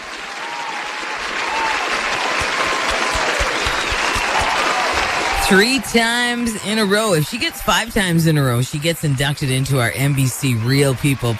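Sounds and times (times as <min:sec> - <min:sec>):
sharp individual claps: 0:00.0 - 0:05.4
crowd applauding a singer: 0:00.0 - 0:11.3
speech: 0:05.5 - 0:11.3.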